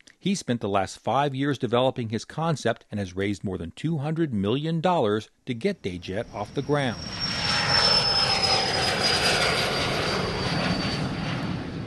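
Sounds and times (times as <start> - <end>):
speech: 0.2 - 7.3
Eclipse 500 twin-turbofan light jet taking off from the tarmac in Boca Raton, Florida: 6.2 - 11.8.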